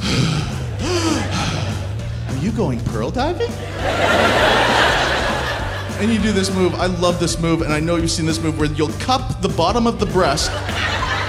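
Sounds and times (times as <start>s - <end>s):
voice imitating a deep drawn-out gasping breath: 0.0s - 2.3s
laughter: 0.1s - 2.7s, 3.4s - 8.6s, 9.5s - 11.2s
speech: 2.4s - 4.6s, 6.0s - 11.0s.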